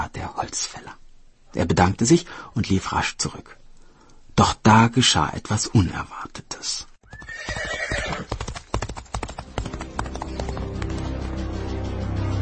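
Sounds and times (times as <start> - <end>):
steady noise: 0.0 - 12.3
speech: 0.2 - 3.6, 4.4 - 8.3
horse hooves clip-clopping: 7.0 - 11.9.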